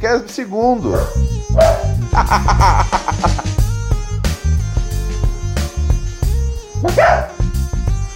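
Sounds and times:
speech: 0.0 - 3.6, 6.8 - 7.3
music: 0.0 - 8.1
dog barking angrily: 1.6 - 2.0, 6.8 - 7.4
laughter: 2.0 - 3.6.

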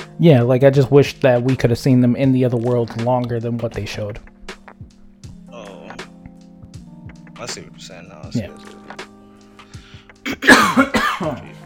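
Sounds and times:
speech: 0.2 - 4.3, 7.5 - 8.8, 10.3 - 11.5
harsh coughing: 10.2 - 11.6.

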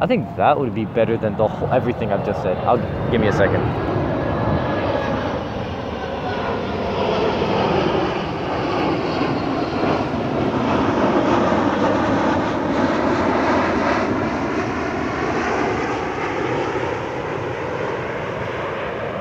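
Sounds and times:
speech: 0.0 - 4.6
airplane engine roar passing overhead: 0.0 - 19.1.

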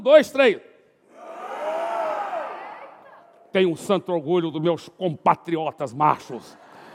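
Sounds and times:
speech: 0.0 - 0.7, 3.6 - 6.6
group of men roaring together imitating male lions: 1.1 - 2.8.

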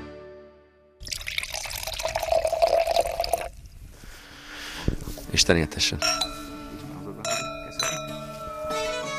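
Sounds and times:
two wine glasses clinking in a toast: 1.0 - 3.5, 5.8 - 9.1
speech: 5.4 - 6.3.

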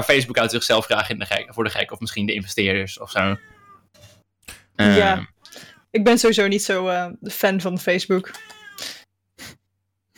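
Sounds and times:
speech: 0.0 - 4.1, 4.8 - 9.0
agitated cat meowing harshly: 3.2 - 3.9, 8.3 - 8.9.

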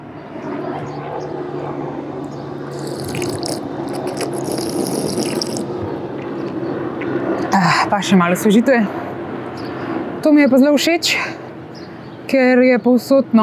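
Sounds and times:
park drinking fountain water splashing and trickling: 2.7 - 6.6
speech: 7.9 - 9.0, 10.2 - 11.4, 12.3 - 13.4.

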